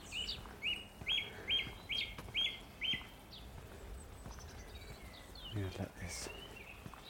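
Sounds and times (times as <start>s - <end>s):
dunnock singing outdoors by a restored cottage: 0.0s - 7.0s
speech: 5.8s - 6.4s.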